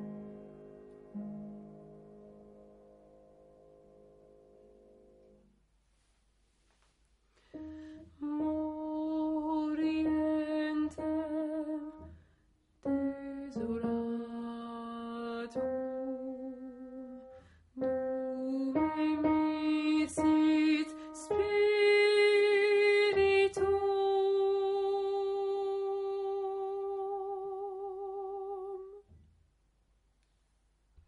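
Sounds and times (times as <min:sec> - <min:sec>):
alto voice singing a choral part: 0:07.7 - 0:12.1, 0:12.8 - 0:29.1.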